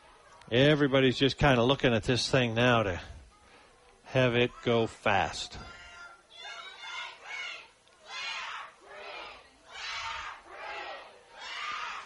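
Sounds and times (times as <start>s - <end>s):
speech: 0.5s - 3.1s, 4.1s - 5.8s
large crowd cheering and yelling at a football game: 4.4s - 12.0s.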